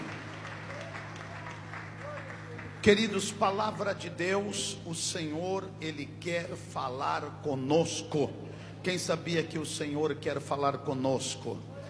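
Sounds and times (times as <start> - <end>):
church congregation applauding during a worship service: 0.0 - 3.6
speech: 2.8 - 11.7.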